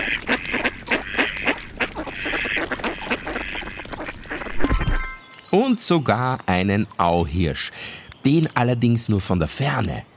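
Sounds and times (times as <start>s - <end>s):
ducks quacking: 0.0s - 4.6s
speech: 5.5s - 10.1s.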